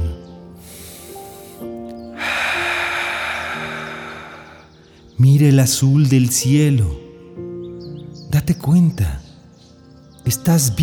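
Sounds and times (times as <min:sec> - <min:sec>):
soft sustained music: 0:00.0 - 0:10.8
slow deep breath in and long airy exhale: 0:00.5 - 0:05.2
speech: 0:05.2 - 0:07.0, 0:08.4 - 0:09.2, 0:10.3 - 0:10.8.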